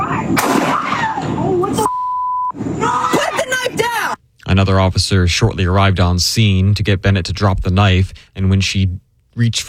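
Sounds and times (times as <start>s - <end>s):
raised voices: 0.0s - 1.9s, 2.6s - 4.2s
gunshots in police video recording: 0.4s - 1.1s
censoring beep tone: 1.8s - 2.6s
speech: 4.6s - 9.6s.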